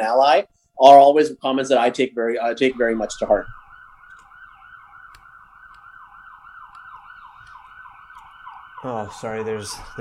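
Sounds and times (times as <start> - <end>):
speech: 0.0 - 3.6, 8.8 - 9.9
ambulance siren wailing as the ambulance passes along the street: 2.7 - 9.9.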